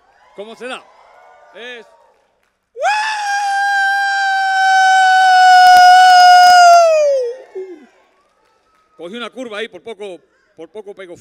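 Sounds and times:
speech: 0.4s - 2.0s, 9.0s - 11.2s
loud high joyful yell of jubilation: 2.8s - 7.9s.

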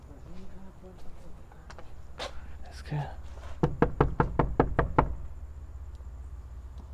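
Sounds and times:
faint low hum: 0.0s - 6.9s
speech: 2.9s - 3.2s
knocking on a door: 3.6s - 5.3s.

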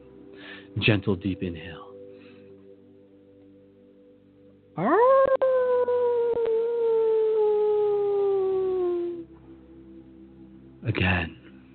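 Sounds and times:
speech: 0.8s - 1.9s, 4.8s - 5.0s
person imitating a wolf howl: 4.8s - 9.2s.

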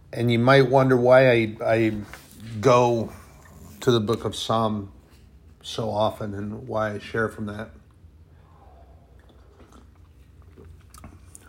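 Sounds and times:
low steady hum: 0.0s - 11.4s
speech: 0.1s - 3.2s, 3.8s - 5.0s, 5.6s - 7.8s
swallow: 8.4s - 11.4s
person sipping coffee: 8.7s - 11.4s
wet mouth noises: 9.1s - 11.4s.

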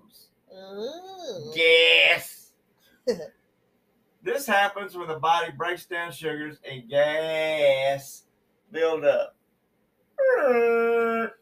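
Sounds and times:
speech: 0.1s - 2.3s, 3.1s - 3.4s, 4.3s - 9.4s, 10.3s - 11.4s
small dog whimpering and howling: 10.2s - 11.2s.

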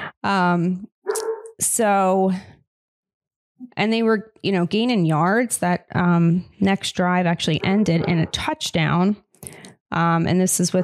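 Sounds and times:
speech: 0.2s - 2.6s, 3.6s - 9.2s, 9.9s - 10.8s
dog barking in drawn-out tonal yelps: 1.1s - 1.5s.

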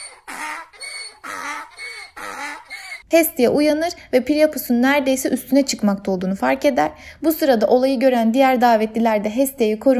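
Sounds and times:
donkey braying loudly: 0.0s - 3.0s
speech: 3.1s - 9.9s.

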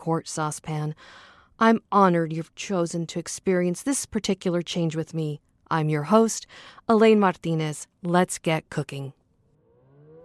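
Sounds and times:
speech: 0.0s - 9.2s
civil defense siren sounding as a drill: 9.5s - 10.2s.

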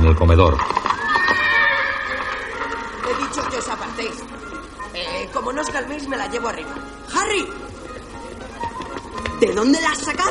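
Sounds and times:
ghost riders' horses galloping through castle halls: 0.0s - 4.4s, 5.0s - 10.2s
speech: 0.1s - 0.9s, 3.5s - 7.7s, 9.2s - 10.2s
horse giving a shrill wavering whinny: 0.8s - 3.4s.

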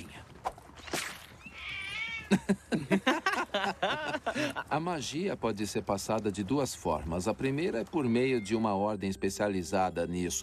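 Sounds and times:
female mother cat meowing: 1.4s - 2.3s
speech: 2.3s - 3.0s, 3.6s - 10.4s
laughter: 2.3s - 4.8s.

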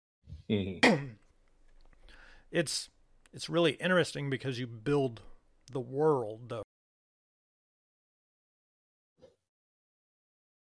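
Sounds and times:
person clearing throat: 0.5s - 1.2s
speech: 0.5s - 1.2s, 2.5s - 6.6s
person coughing: 0.8s - 1.2s.

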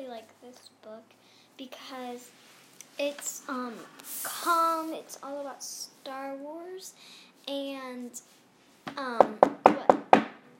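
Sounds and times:
speech: 0.2s - 9.6s
sharp raps knocking at a door: 8.9s - 10.4s.

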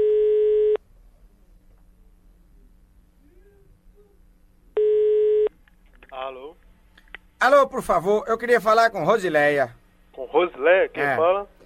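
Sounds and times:
ringback tone of an outgoing phone call: 0.0s - 0.8s, 4.8s - 5.5s
speech: 7.4s - 11.5s.

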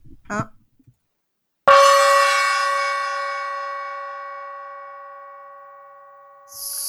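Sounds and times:
speech: 0.3s - 0.6s
gong ringing: 1.7s - 6.6s.

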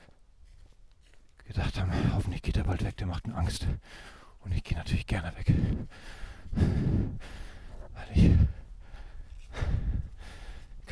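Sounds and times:
person panting heavily after a steep climb through a forest at night: 1.8s - 2.2s, 3.8s - 4.4s, 5.5s - 10.8s
speech: 2.7s - 7.4s, 8.0s - 8.5s.

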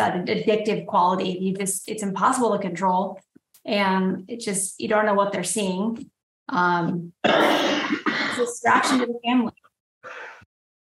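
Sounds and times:
speech: 0.0s - 10.2s
person coughing harshly: 7.2s - 9.2s.

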